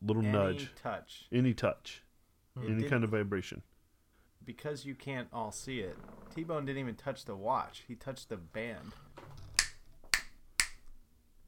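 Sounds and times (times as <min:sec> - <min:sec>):
speech: 0:00.1 - 0:02.0, 0:02.6 - 0:03.7, 0:04.4 - 0:09.4
hand claps testing a clap-activated device: 0:09.6 - 0:10.9.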